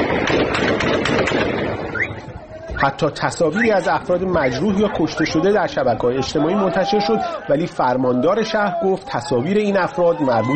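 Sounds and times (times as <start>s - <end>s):
gunfire cracks: 0.0s - 2.2s
crowd and street noise: 0.0s - 10.5s
speech: 2.8s - 10.5s.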